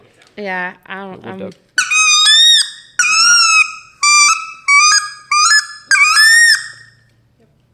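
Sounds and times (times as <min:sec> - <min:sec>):
speech: 0:00.4 - 0:01.7
goose hunting call blown: 0:01.8 - 0:06.9.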